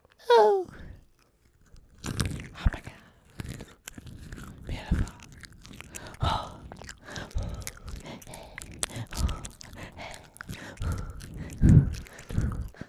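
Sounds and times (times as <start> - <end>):
person murmuring: 0.2 - 0.7
crunchy chewing of nuts: 1.0 - 12.8.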